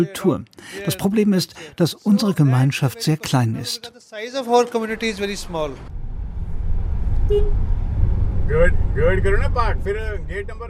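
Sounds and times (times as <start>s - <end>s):
speech: 0.0s - 6.0s, 7.3s - 7.7s, 8.5s - 10.6s
car engine and road rumble inside a car driving in Gurgaon India: 4.9s - 10.6s.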